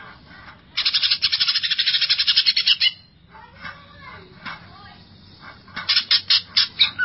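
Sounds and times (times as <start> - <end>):
Greater green leafbird singing: 0.8 - 3.2, 5.9 - 7.0.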